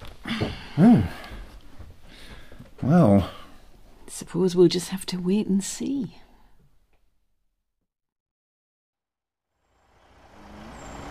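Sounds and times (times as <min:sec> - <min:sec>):
speech: 0:00.8 - 0:01.2, 0:02.8 - 0:03.4, 0:04.2 - 0:06.2
lorry engine rumbling while backing up: 0:09.7 - 0:11.1.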